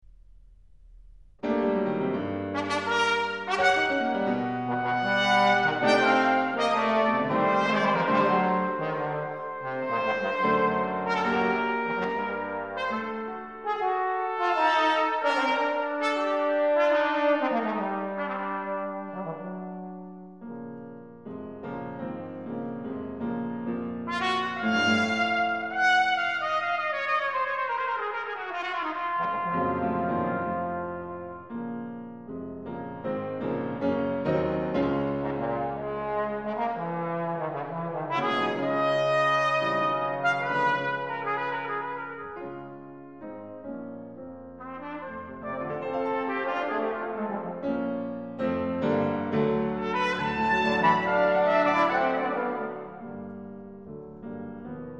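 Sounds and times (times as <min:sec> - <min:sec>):
piano in a trio: 0:00.0 - 0:54.9
trombone in a trio: 0:01.4 - 0:20.2, 0:23.9 - 0:32.0, 0:34.6 - 0:42.8, 0:44.6 - 0:53.3
trumpet in a trio: 0:01.4 - 0:20.3, 0:23.9 - 0:32.2, 0:34.6 - 0:43.7, 0:44.5 - 0:53.5.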